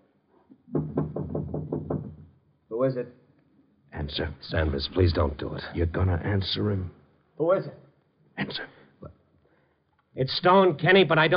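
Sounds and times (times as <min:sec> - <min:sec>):
knocking on the wooden door of a flat: 0:00.7 - 0:02.4
speech: 0:02.8 - 0:03.2, 0:04.0 - 0:07.8, 0:08.4 - 0:08.8, 0:10.2 - 0:11.3.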